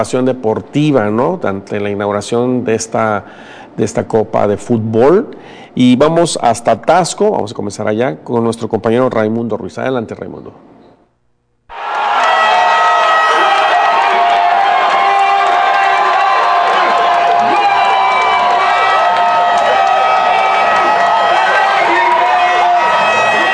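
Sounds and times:
speech: 0.0 - 10.7
large outdoor crowd cheering goals at fan fest plaza: 11.7 - 23.5.

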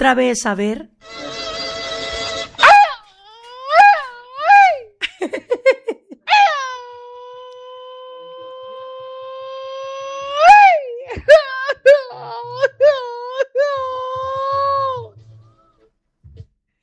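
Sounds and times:
speech: 0.0 - 1.4
man wailing and sobbing: 1.1 - 5.0, 6.1 - 15.2.

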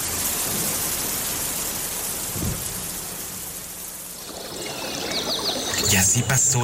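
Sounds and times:
heavy storm rain pouring down: 0.0 - 6.6
speech: 5.9 - 6.6.

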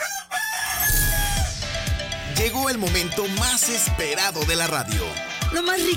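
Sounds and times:
rooster crowing: 0.0 - 1.7
speech: 2.4 - 5.9.

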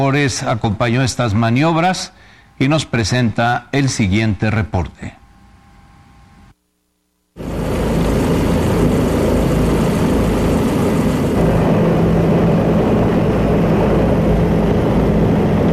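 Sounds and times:
speech: 0.0 - 5.2
Bell 407 helicopter rotor and turbine engine roaring over Mexico's capital: 7.4 - 15.7.

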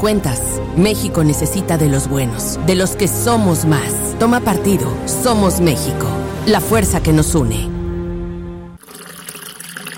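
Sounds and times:
speech: 0.0 - 7.7
tap water running into a sink: 8.8 - 9.9.

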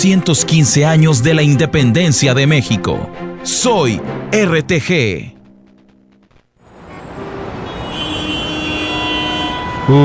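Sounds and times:
speech: 0.0 - 5.4, 9.9 - 10.0
dense rumble of cars and engines: 6.3 - 10.0.

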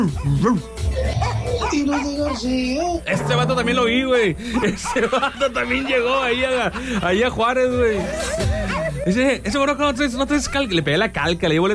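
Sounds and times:
dog barking with higher yelping, whiny edges: 0.0 - 2.6, 4.5 - 6.1, 8.6 - 9.0
speech: 0.0 - 11.7
laughter: 4.5 - 9.4.

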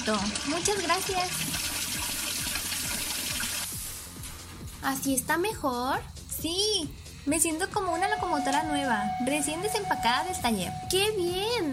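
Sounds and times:
speech: 0.0 - 1.6, 4.8 - 11.7
cold water pouring in a continuous rushing splash: 0.0 - 4.1.

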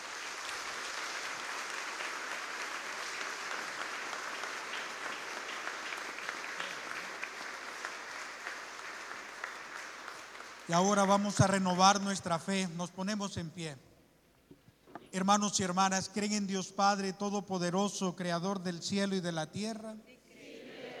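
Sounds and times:
audience at a parish Mass applauding: 0.0 - 11.5
speech: 10.7 - 13.9, 15.1 - 20.2.

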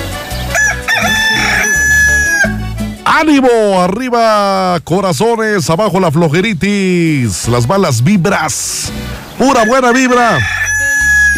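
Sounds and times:
rooster crowing: 0.5 - 2.6, 9.4 - 11.3
speech: 3.2 - 10.8.

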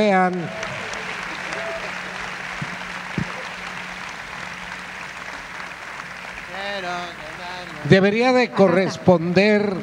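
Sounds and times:
speech: 0.0 - 0.6, 6.7 - 9.8
audience applauding at an orchestra concert: 0.0 - 9.8.

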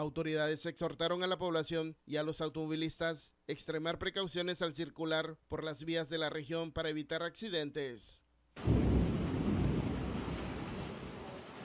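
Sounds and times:
speech: 0.0 - 8.8
heavy rain: 8.6 - 11.6.

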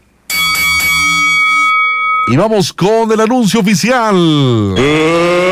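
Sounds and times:
bell being struck: 0.3 - 2.5
speech: 2.3 - 5.4.

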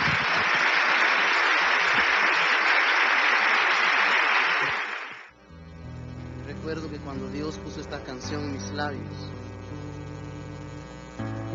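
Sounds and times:
sustained crowd applause: 0.0 - 5.3
speech: 7.2 - 9.4.

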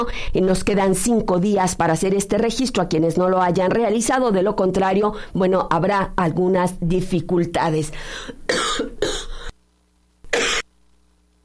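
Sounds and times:
speech: 0.0 - 9.3
faint electrical hum: 0.0 - 11.4
harsh coughs: 8.5 - 9.5, 10.3 - 10.7.

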